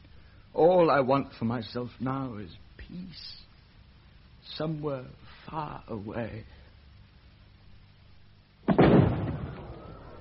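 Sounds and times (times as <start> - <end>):
speech: 0.6 - 3.4, 4.5 - 6.6
firework bursting in the evening: 8.6 - 10.1.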